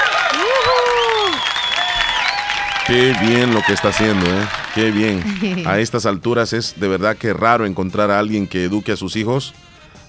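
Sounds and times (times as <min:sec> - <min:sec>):
crowd applauding: 0:00.0 - 0:06.0
high whistles from a crowd: 0:00.3 - 0:04.8
laughter: 0:00.3 - 0:06.0
speech: 0:02.9 - 0:09.6.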